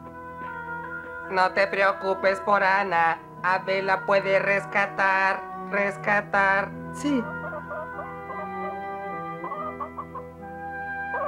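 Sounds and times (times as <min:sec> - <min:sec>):
speech: 0:01.3 - 0:07.4
hens clucking: 0:07.3 - 0:10.4.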